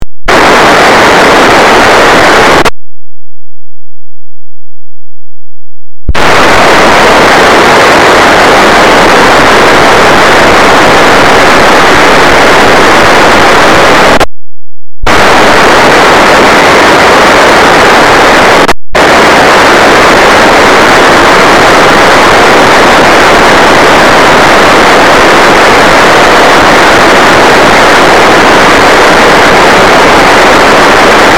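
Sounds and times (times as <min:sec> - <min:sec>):
encrypted P25 digital radio signal received as NBFM: 0:00.3 - 0:02.8, 0:06.1 - 0:14.3, 0:15.0 - 0:31.3.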